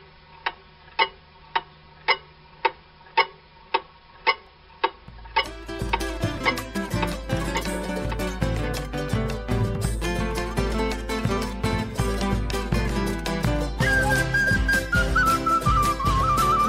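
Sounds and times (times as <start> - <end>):
wall clock ticking: 0.5 - 14.2
music: 5.3 - 16.6.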